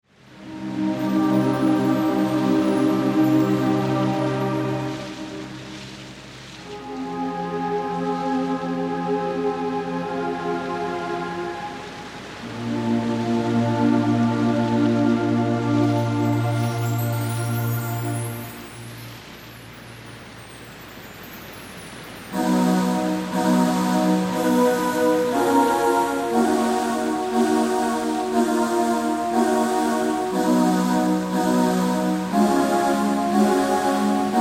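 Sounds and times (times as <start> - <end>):
relaxation music: 0.0 - 34.3.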